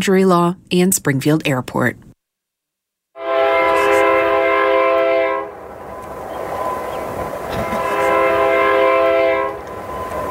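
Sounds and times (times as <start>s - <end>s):
speech: 0.0s - 2.0s
multi-toned train horn blasts: 3.2s - 6.0s, 6.6s - 10.3s.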